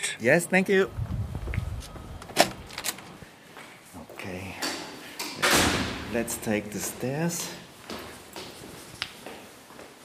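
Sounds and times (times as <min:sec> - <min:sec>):
speech: 0:00.2 - 0:01.0, 0:06.1 - 0:07.6
door pushed open with clicks and knocks: 0:02.2 - 0:03.1, 0:04.7 - 0:06.1.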